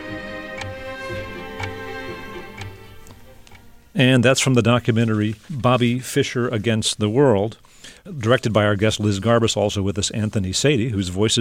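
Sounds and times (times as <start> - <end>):
chess clock ticking during a chess game: 0.0 - 5.1
speech: 4.0 - 11.3.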